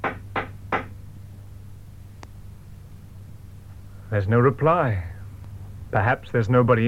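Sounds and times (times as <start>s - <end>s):
firm knocking on a door: 0.0s - 1.0s
faint steady low hum: 0.0s - 6.8s
speech: 4.1s - 5.1s, 5.9s - 6.8s.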